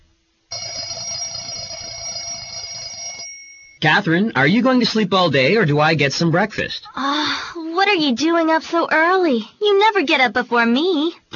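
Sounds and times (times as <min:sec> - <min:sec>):
electronic alarm clock ringing: 0:00.5 - 0:04.0
speech: 0:03.8 - 0:11.3.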